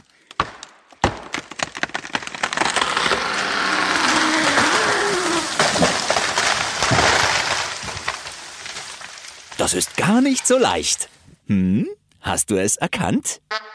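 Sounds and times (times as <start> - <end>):
sharp cracks of splitting wood from a falling tree: 0.0 - 11.1
tree falling with creaking, crashing branches: 0.4 - 11.0
speech: 9.7 - 13.6.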